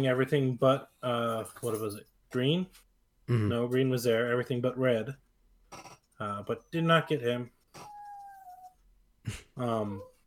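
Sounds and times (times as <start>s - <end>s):
speech: 0.0s - 7.9s, 9.3s - 10.1s
dog whining: 7.7s - 8.9s, 9.6s - 10.2s.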